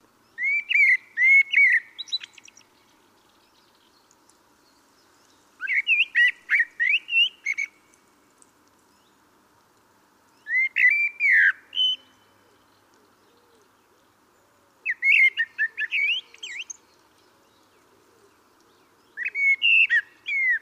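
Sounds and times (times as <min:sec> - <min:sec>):
faint steady background noise: 0:00.0 - 0:20.6
common blackbird Turdus merula singing: 0:00.3 - 0:04.0, 0:05.6 - 0:07.8, 0:10.4 - 0:14.1, 0:14.8 - 0:20.6.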